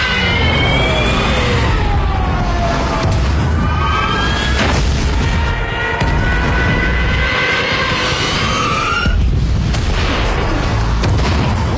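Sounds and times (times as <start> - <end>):
explosions from German warplanes bombing a coast: 0.4 - 11.7.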